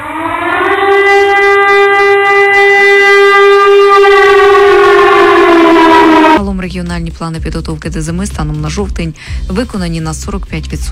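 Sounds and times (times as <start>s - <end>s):
air raid civil defense siren wailing: 0.0s - 6.4s
speech: 6.6s - 10.9s.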